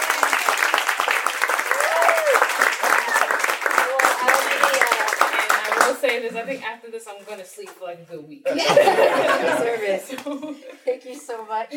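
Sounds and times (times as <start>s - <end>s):
audience applauding an author at an evening book event: 0.0s - 6.2s
voices and cheers: 1.6s - 4.9s
speech: 6.2s - 11.7s
laughter: 8.5s - 10.9s.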